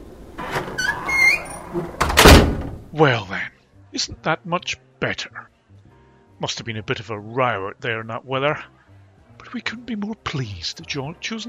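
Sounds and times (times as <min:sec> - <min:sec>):
door creaking on its hinges: 0:00.3 - 0:02.9
speech: 0:01.7 - 0:01.9, 0:03.0 - 0:03.4, 0:04.0 - 0:05.5, 0:06.4 - 0:08.8, 0:09.4 - 0:11.4.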